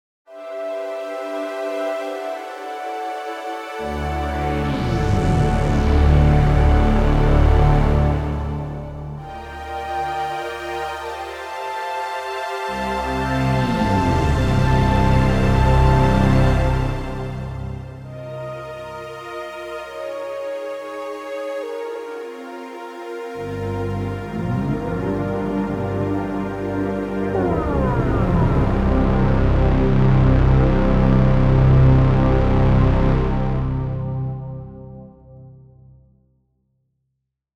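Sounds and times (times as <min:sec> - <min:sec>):
dreamy drone: 0:00.4 - 0:35.6.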